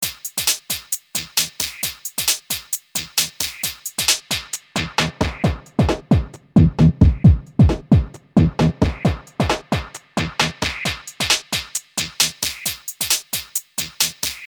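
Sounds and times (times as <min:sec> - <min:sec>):
band-pass filtered loop: 0:04.3 - 0:12.7.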